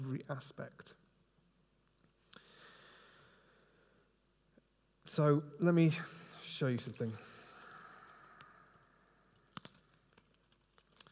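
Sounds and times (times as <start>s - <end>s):
speech: 0.1s - 1.0s, 5.1s - 7.3s
bunch of keys jingling: 6.7s - 11.1s.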